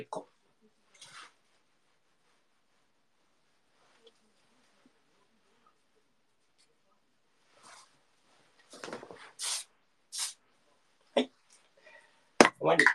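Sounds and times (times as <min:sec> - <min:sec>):
speech: 0:00.0 - 0:00.3, 0:12.7 - 0:12.9
hairspray being sprayed on hair to shape it: 0:09.4 - 0:10.4.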